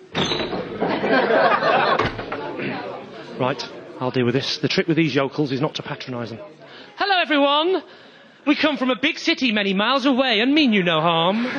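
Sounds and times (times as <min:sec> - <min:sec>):
pub door swinging open: 0:00.0 - 0:01.0, 0:01.8 - 0:02.5
pub crowd chatter with many overlapping voices murmuring and laughing: 0:00.0 - 0:11.5
laughter: 0:00.7 - 0:03.4, 0:11.2 - 0:11.5
speech: 0:03.4 - 0:11.5.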